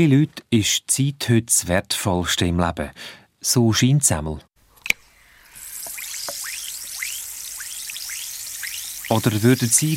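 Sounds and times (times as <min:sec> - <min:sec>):
speech: 0:00.0 - 0:04.5, 0:09.1 - 0:09.9
effervescent tablet fizzing in water: 0:05.1 - 0:09.9.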